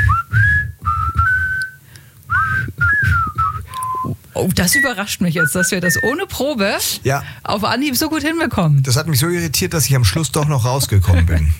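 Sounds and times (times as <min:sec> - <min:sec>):
people whistling a melody in time to music: 0:00.0 - 0:06.2
speech: 0:04.4 - 0:11.5.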